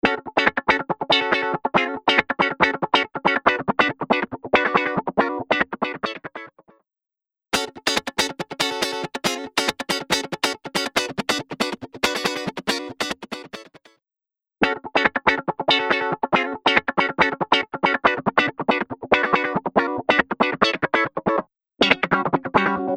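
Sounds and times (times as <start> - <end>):
funk guitar with auto wah: 0.0 - 6.5, 7.6 - 13.8, 14.6 - 22.9.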